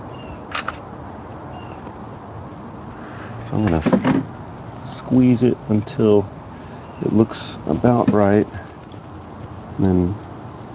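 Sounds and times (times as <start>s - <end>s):
faint steady hiss: 0.0s - 10.7s
camera shutter clicks: 0.5s - 0.8s
speech: 3.5s - 6.4s, 7.0s - 8.7s, 9.8s - 10.2s.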